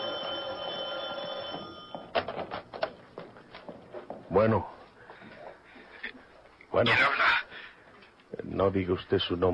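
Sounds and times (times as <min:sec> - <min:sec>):
telephone bell ringing: 0:00.0 - 0:02.2
clattering knocks and bumps: 0:01.5 - 0:04.3
speech: 0:04.3 - 0:04.8, 0:06.8 - 0:07.3, 0:08.6 - 0:09.5.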